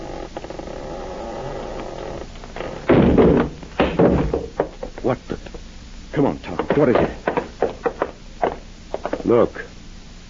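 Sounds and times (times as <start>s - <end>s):
door shoved open with heavy thumps and scraping bangs: 2.8s - 4.6s
speech: 6.2s - 7.2s, 9.3s - 9.7s.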